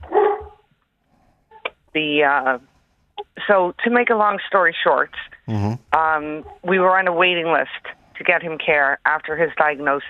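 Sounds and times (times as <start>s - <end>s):
dog barking: 0.1s - 0.6s
speech: 2.0s - 2.7s, 3.4s - 10.0s.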